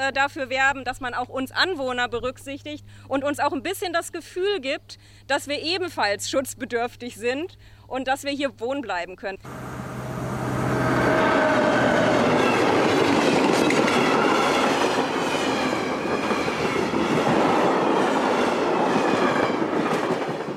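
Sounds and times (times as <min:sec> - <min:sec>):
speech: 0:00.0 - 0:10.0
long heavy freight train rolling past with rattling wagons: 0:09.5 - 0:20.5
freight train wheels clattering over rail joints: 0:11.1 - 0:20.5.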